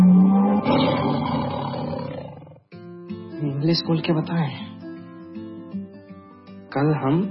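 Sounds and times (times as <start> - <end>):
tiger roar used in a radio station jingle: 0.0 - 2.6
speech: 3.6 - 4.7, 6.8 - 7.2.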